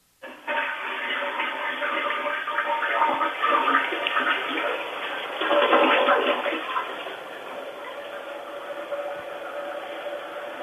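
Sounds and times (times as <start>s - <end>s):
toilet flushing: 0.2s - 10.6s.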